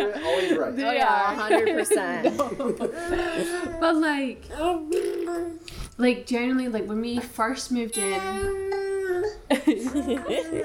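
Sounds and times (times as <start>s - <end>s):
laughter: 0.0s - 3.8s, 9.5s - 10.6s
speech: 0.0s - 8.8s, 9.5s - 10.6s
baby babbling: 4.4s - 5.7s, 8.0s - 10.6s.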